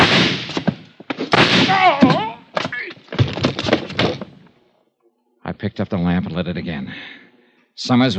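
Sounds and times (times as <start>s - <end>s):
gunshots in a struggle: 0.0s - 2.9s
heavy thuds and scuffling in a struggle: 0.0s - 4.5s
person crying out: 1.7s - 2.9s
speech: 5.6s - 7.2s, 7.8s - 8.1s.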